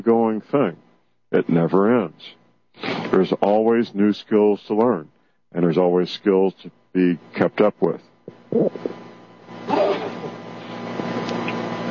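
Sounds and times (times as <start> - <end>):
speech: 0.0 - 8.9
low steady hum: 0.0 - 11.8
person sneezing: 9.7 - 10.3.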